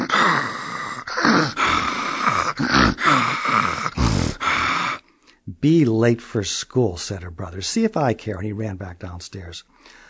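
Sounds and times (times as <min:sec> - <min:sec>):
voice imitating loud snoring of a girl asleep in bed: 0:00.0 - 0:05.0
speech: 0:05.6 - 0:10.0.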